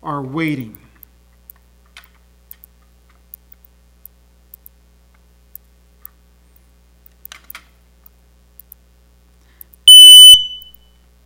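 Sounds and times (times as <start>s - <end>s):
speech: 0.0s - 0.8s
smoke alarm beep: 9.8s - 10.8s.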